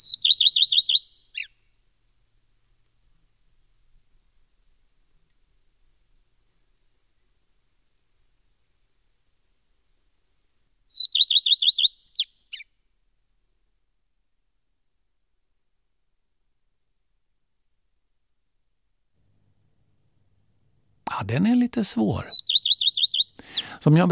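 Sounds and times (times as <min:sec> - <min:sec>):
common redstart song of whirring notes and twittering: 0:00.0 - 0:01.6, 0:10.9 - 0:12.6, 0:22.0 - 0:24.1
speech: 0:21.2 - 0:22.4, 0:23.8 - 0:24.1.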